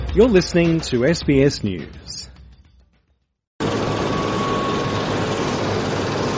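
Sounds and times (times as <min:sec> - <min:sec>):
speech: 0:00.2 - 0:02.3
helicopter taking off from an airport on Denmark's west coast: 0:03.6 - 0:06.3.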